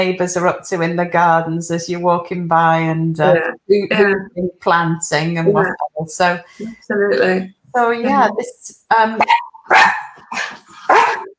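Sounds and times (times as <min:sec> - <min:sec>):
speech: 0:00.0 - 0:10.6
dog barking: 0:09.2 - 0:10.2, 0:10.9 - 0:11.3.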